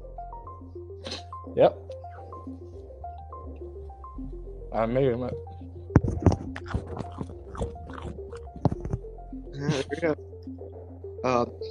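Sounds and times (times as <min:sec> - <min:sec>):
speech: 0:01.6 - 0:01.8, 0:04.7 - 0:05.5, 0:09.6 - 0:10.2, 0:11.2 - 0:11.6
biting and chewing a crisp pepper: 0:06.2 - 0:09.0
wet munching: 0:06.2 - 0:09.0.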